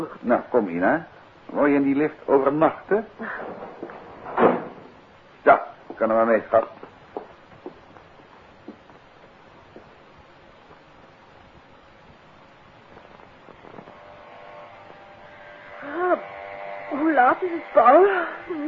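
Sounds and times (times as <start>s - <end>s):
speech: 0.0s - 3.6s, 5.4s - 6.8s, 17.2s - 18.6s
hiss: 0.0s - 18.6s
electric shaver buzzing: 13.5s - 18.6s.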